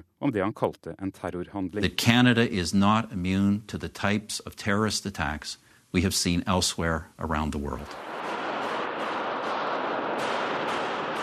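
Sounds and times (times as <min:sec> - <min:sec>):
speech: 0:00.2 - 0:08.4
gunfire exchange inside a parliament building: 0:08.0 - 0:11.2.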